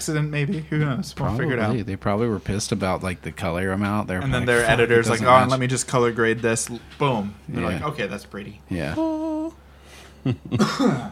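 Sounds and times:
speech: 0.0s - 9.6s, 10.2s - 11.1s
person coughing after a drink went down the wrong pipe: 10.5s - 11.1s.

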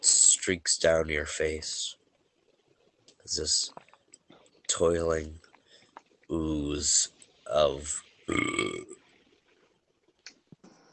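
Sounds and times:
speech: 0.5s - 2.0s, 3.3s - 3.8s, 4.8s - 5.4s, 6.3s - 9.0s
faint clicks: 2.0s - 6.4s, 9.8s - 10.9s
loud throaty burp: 8.3s - 9.0s.

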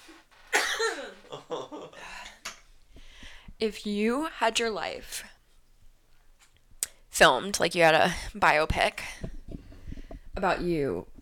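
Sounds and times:
person coughing harshly after using a vape pen: 0.5s - 2.0s
speech: 3.6s - 5.3s, 7.2s - 9.2s, 10.4s - 11.1s.

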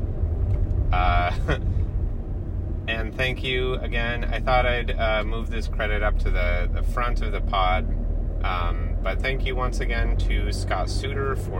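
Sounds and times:
road noise inside a moving car: 0.0s - 11.5s
speech: 0.9s - 1.8s, 2.9s - 11.5s.

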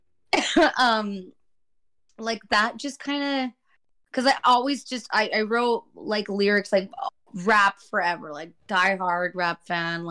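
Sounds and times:
person coughing with throaty rasp: 0.3s - 0.9s
speech: 0.6s - 1.4s, 2.2s - 10.1s.

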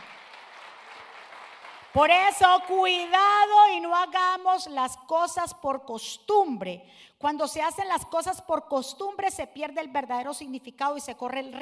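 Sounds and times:
audience applauding: 0.0s - 2.0s
speech: 2.0s - 11.5s.

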